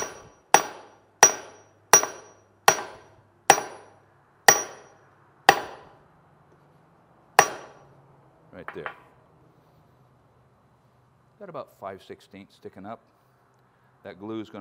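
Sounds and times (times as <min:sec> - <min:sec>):
hammer blows driving a tool head onto its handle over a wedge: 0:00.0 - 0:06.0, 0:07.4 - 0:07.9
speech: 0:08.6 - 0:09.0, 0:11.4 - 0:13.2, 0:14.0 - 0:14.5.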